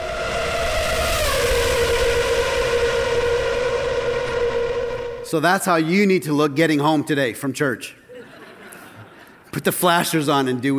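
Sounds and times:
Formula One race car engine screaming at high revs: 0.0 - 5.4
speech: 5.3 - 8.0, 9.5 - 10.7
laughter: 8.1 - 9.6.

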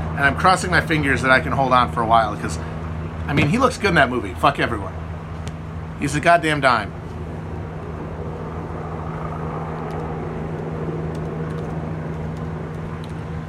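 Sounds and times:
helicopters flying overhead: 0.0 - 13.4
speech: 0.2 - 2.7, 3.3 - 5.0, 6.0 - 7.0.

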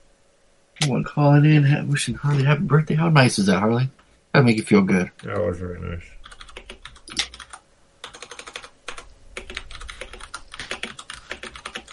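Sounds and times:
speech: 0.8 - 6.2
typing on a computer keyboard: 6.2 - 11.9.

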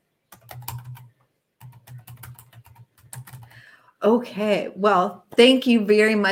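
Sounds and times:
typing on a computer keyboard: 0.3 - 3.6
speech: 4.0 - 6.2.

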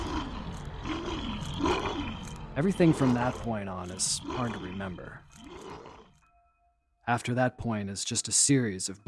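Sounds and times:
big wolf snarling and growling as it attacks a person: 0.0 - 6.2
speech: 2.6 - 5.6, 7.1 - 9.0.

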